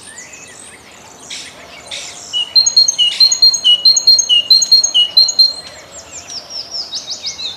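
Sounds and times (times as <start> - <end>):
great tit singing two-note phrases: 0.0 - 7.5
faint chirps: 1.4 - 5.8.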